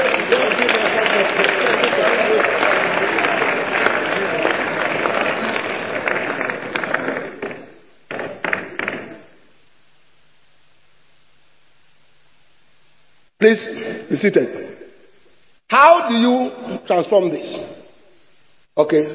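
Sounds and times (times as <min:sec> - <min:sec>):
church crowd applauding: 0:00.0 - 0:09.4
speech: 0:00.3 - 0:01.4, 0:13.4 - 0:14.6, 0:15.7 - 0:17.7, 0:18.8 - 0:19.1.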